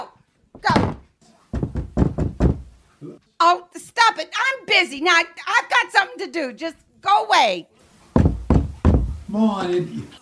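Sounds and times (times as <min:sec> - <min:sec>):
thuds in a steady rhythm: 0:00.5 - 0:02.9, 0:08.1 - 0:09.4
door swinging shut with a solid thunk: 0:00.6 - 0:02.7, 0:08.2 - 0:09.3
speech: 0:03.4 - 0:07.8, 0:09.3 - 0:10.2.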